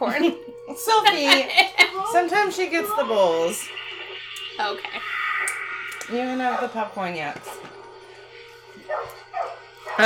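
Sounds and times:
speech: 0.0s - 3.8s, 4.6s - 7.8s
dog barking: 8.9s - 10.0s.

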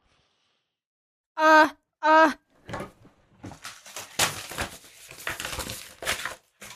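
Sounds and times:
paper rustling and crinkling: 3.4s - 6.7s.

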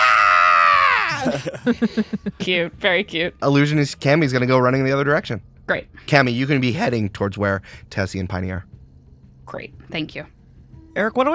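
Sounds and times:
high-pitched shrill human scream: 0.0s - 1.9s
laughter: 0.9s - 3.1s
speech: 1.2s - 8.8s, 9.5s - 10.4s, 11.0s - 11.3s.

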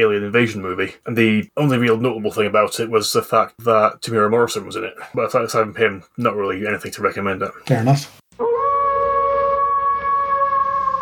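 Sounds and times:
speech: 0.0s - 8.5s
person howling like a dog: 8.4s - 11.0s.

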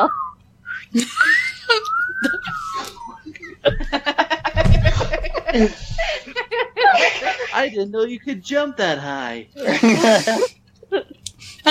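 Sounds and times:
group of people whistling in celebration: 0.0s - 3.4s
speech: 0.8s - 2.6s, 5.5s - 5.8s, 7.6s - 10.5s
people laughing: 0.8s - 7.8s, 9.6s - 11.6s
excited chatter: 0.9s - 7.7s.

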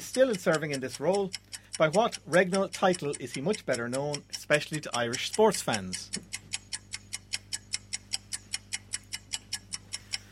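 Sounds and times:
quiz countdown clock ticking: 0.0s - 10.2s
speech: 0.1s - 6.4s.

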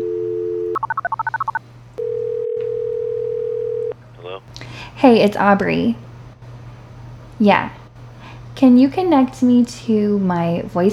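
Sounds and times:
telephone dial tone: 0.0s - 3.9s
telephone keypad beeps as a number is dialed: 0.8s - 1.6s
speech: 5.0s - 6.0s, 7.4s - 7.8s, 8.6s - 10.9s.

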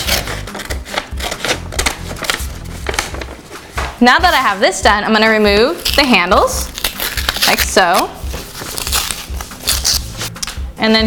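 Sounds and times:
scissors cutting a paper bag: 0.0s - 3.3s, 5.2s - 10.6s
crinkly paper bag rustling: 0.0s - 10.5s
speech: 4.0s - 6.7s, 7.5s - 8.2s, 10.8s - 11.0s.

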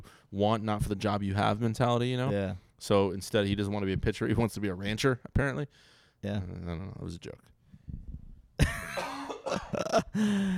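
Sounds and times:
speech: 0.3s - 7.5s, 9.5s - 10.5s
person coughing: 8.6s - 10.5s.

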